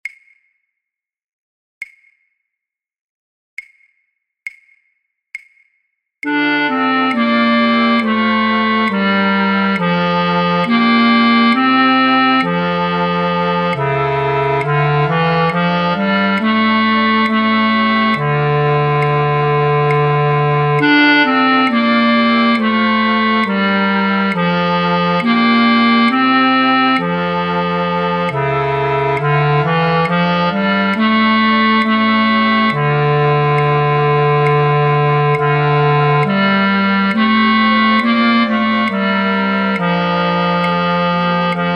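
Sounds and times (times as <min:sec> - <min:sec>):
bass flute in a flute orchestra: 0:06.2 - 0:41.7.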